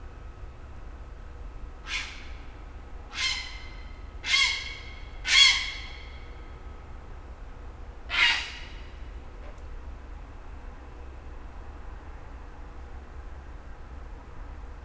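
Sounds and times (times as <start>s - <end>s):
steady low rumble of traffic from interchanges: 0.0s - 14.8s
grey heron giving harsh broad croaking squawks beside a backwater of the Garonne: 3.1s - 6.2s, 8.1s - 8.7s.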